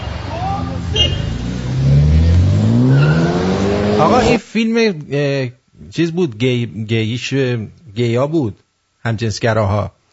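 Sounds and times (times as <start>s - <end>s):
racing car tires squealing: 0.0s - 4.4s
tuned street racing car engine revving: 0.0s - 4.4s
speech: 4.0s - 10.1s.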